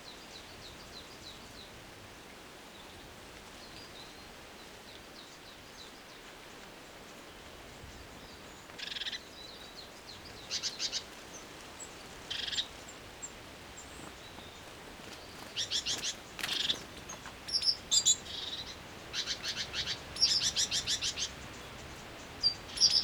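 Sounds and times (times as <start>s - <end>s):
background hiss: 0.0s - 23.0s
Great tit Parus major buzzy chattering calls: 15.4s - 21.8s.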